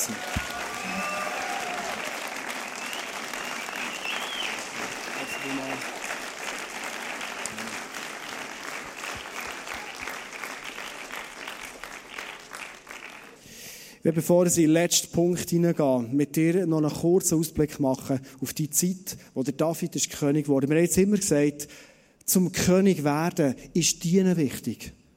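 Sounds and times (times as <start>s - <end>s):
audience applause at a church service: 0.0s - 13.4s
whistles in the crowd: 2.6s - 5.8s
speech: 14.1s - 25.0s.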